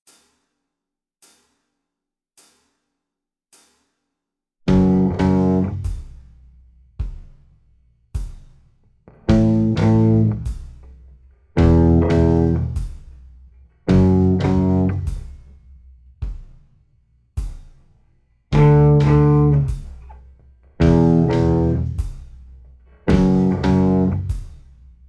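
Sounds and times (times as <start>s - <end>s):
slow guitar riff: 4.7s - 5.8s, 9.2s - 10.4s, 11.6s - 12.8s, 13.9s - 15.1s, 18.6s - 19.7s, 20.8s - 22.0s, 23.0s - 24.3s.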